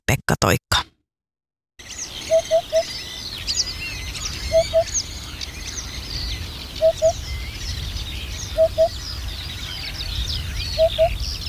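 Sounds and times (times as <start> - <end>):
speech: 0.1 - 0.7
birds singing: 1.8 - 11.4
Eurasian hoopoe calling: 2.3 - 2.9, 4.4 - 5.0, 6.8 - 7.2, 8.5 - 9.0.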